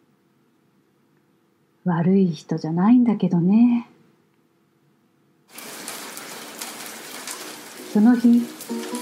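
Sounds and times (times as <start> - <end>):
speech: 1.8 - 3.9, 8.0 - 9.0
rain falling: 5.5 - 9.0.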